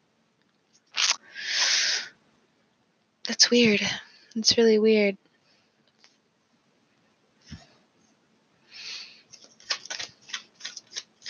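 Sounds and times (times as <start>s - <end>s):
deck of cards being riffled and shuffled: 0.9s - 1.2s, 9.3s - 11.2s
speech: 3.4s - 5.3s.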